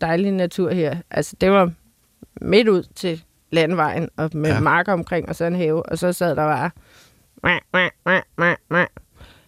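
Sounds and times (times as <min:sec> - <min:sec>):
speech: 0:00.0 - 0:01.8, 0:02.4 - 0:09.0
person imitating tree frog croaks: 0:04.5 - 0:04.7, 0:07.4 - 0:09.0.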